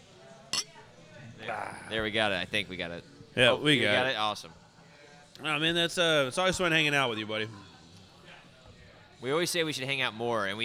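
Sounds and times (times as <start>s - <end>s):
glasses clinking in a toast: 0.5s - 0.8s
speech: 1.5s - 4.6s, 5.4s - 7.7s, 9.2s - 10.6s.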